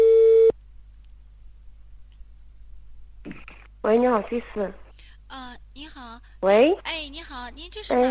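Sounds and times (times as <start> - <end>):
telephone tone while a call is transferred: 0.0 - 0.5
speech: 3.8 - 4.8, 5.8 - 8.0.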